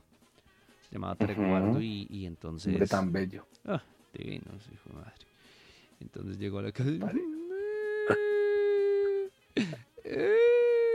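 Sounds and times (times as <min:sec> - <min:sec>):
speech: 0:00.9 - 0:05.3, 0:06.0 - 0:07.3, 0:08.1 - 0:08.3, 0:09.6 - 0:10.4
voice imitating a child crying: 0:07.0 - 0:10.9.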